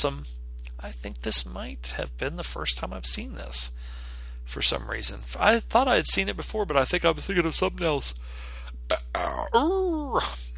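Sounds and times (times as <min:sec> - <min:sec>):
speech: 0:00.0 - 0:10.5
drawn-out burp with a wavering tonal rumble: 0:08.9 - 0:09.6.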